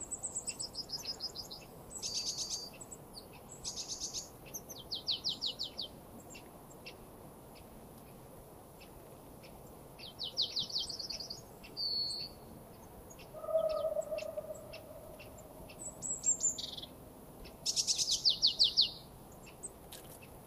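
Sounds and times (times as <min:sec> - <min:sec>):
Marsh tit Poecile palustris calls: 0:00.4 - 0:07.7, 0:08.8 - 0:20.4.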